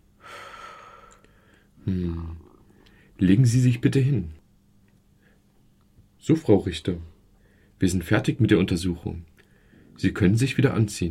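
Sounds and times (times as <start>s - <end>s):
deep breathing in and out during a medical examination: 0.0s - 3.2s, 9.4s - 10.0s
speech: 1.8s - 2.4s, 3.2s - 4.4s, 6.2s - 7.1s, 7.8s - 9.3s, 10.0s - 11.0s.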